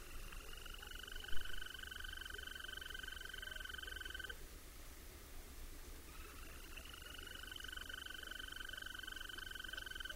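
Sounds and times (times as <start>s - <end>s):
quiet hiss: 0.0s - 10.1s
European green toad trilling call: 0.1s - 4.3s, 6.1s - 10.1s.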